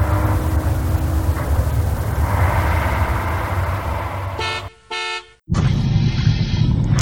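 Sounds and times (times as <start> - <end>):
arriving bus engine rumbling: 0.0 - 7.0
bus horn toot: 4.2 - 5.4.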